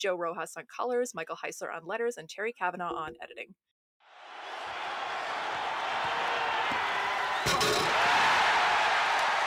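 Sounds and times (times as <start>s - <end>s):
speech: 0.0s - 4.4s
large crowd cheering at a slam dunk in a dunk contest: 4.0s - 9.4s.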